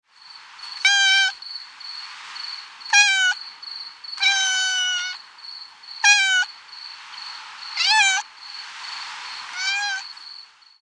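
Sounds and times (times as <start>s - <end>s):
female cat meowing: 0.8s - 1.4s, 2.9s - 3.4s, 4.2s - 5.2s, 6.0s - 6.5s, 7.8s - 8.3s, 9.5s - 10.1s.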